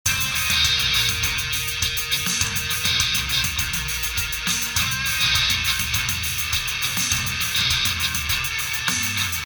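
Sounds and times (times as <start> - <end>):
video action loop: 0.0 - 9.4.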